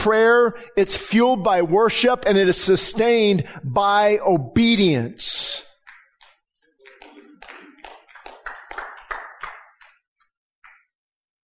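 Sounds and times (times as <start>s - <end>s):
speech: 0.0s - 5.7s
scattered audience clapping: 5.7s - 11.0s.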